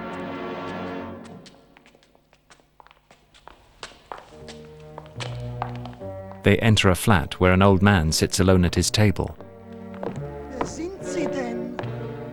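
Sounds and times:
footsteps of three men climbing a stairwell in a block of flats: 1.2s - 6.5s, 9.4s - 12.1s
speech: 6.4s - 9.4s.

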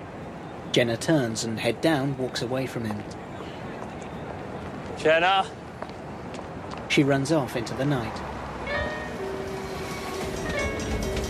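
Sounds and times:
speech: 0.7s - 3.2s, 5.0s - 5.6s, 6.9s - 8.3s
train travelling beside a river: 7.6s - 11.2s.

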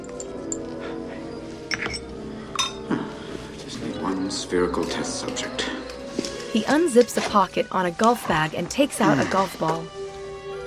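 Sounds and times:
glass stirring rod clinking against a container while mixing cream: 1.7s - 2.8s
speech: 4.3s - 5.8s, 6.5s - 10.0s.

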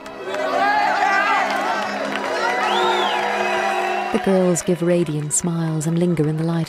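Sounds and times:
crowd of young men whooping and cheering outside a theatre stage door: 0.0s - 5.3s
speech: 4.1s - 6.6s.

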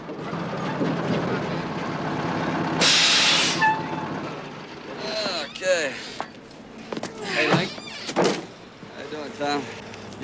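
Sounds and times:
truck engine rumble pulling into a yard: 0.0s - 10.2s
speech: 0.8s - 1.1s
truck air-brake hiss: 2.8s - 3.7s.

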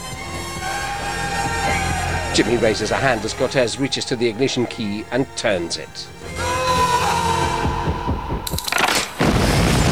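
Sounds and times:
low throbbing music with pulsing beats: 0.0s - 9.8s
speech: 2.4s - 6.5s
roaring crackling rush of fire and debris from the blast: 8.4s - 9.8s
van explosion with fireball: 9.2s - 9.8s.

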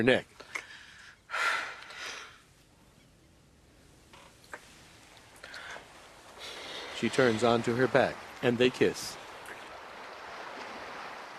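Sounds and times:
speech: 0.0s - 0.4s, 7.0s - 9.2s
ocean surf rolling: 3.9s - 11.3s.

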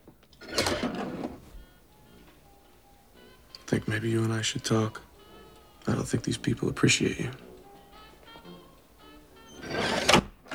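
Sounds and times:
door peephole sliding open with a clack: 0.4s - 2.4s, 7.3s - 10.5s
speech: 3.7s - 5.1s, 5.8s - 7.5s.

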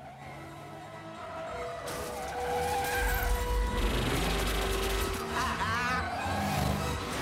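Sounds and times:
car engines roaring: 0.0s - 7.2s
car tires squealing and skidding: 0.0s - 7.2s.

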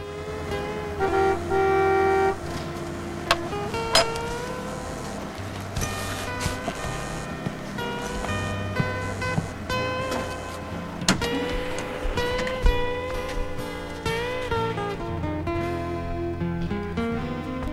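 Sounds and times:
car horn toot: 0.0s - 13.6s
saloon car idling in an outdoor car park: 0.0s - 17.7s.

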